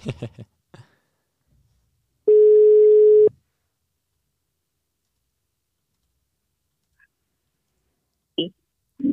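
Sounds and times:
electronic telephone ringback tone on outgoing call: 0:02.3 - 0:03.3.

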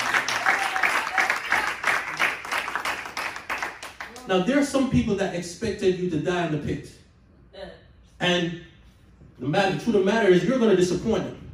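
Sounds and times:
audience clapping: 0:00.0 - 0:04.3
speech: 0:04.3 - 0:07.0, 0:08.2 - 0:08.7, 0:09.4 - 0:11.4.

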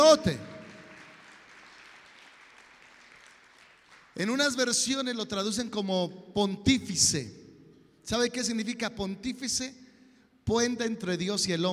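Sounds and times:
crowd applauding: 0:00.0 - 0:04.2
speech: 0:00.1 - 0:00.4, 0:04.2 - 0:07.4, 0:08.0 - 0:09.8, 0:10.4 - 0:11.7.

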